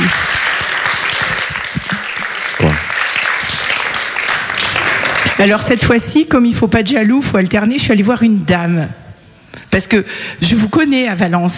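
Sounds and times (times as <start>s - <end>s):
audience applause: 0.0s - 5.6s
speech: 5.4s - 9.0s, 9.8s - 11.5s.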